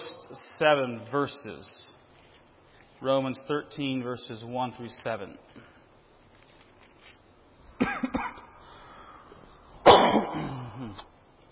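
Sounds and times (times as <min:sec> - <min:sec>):
speech: 0:00.3 - 0:01.9, 0:03.0 - 0:05.7
dry coughing: 0:07.8 - 0:08.5, 0:09.8 - 0:11.1.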